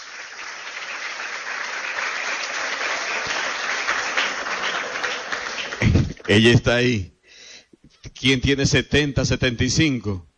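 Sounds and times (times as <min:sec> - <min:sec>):
crowd applause of many hands clapping: 0:00.0 - 0:06.6
speech: 0:06.3 - 0:07.1, 0:08.2 - 0:10.3.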